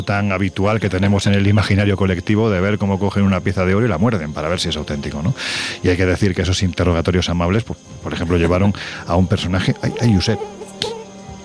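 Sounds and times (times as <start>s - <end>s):
speech: 0.0s - 10.9s
mosquito whine on a person's face: 0.0s - 11.4s.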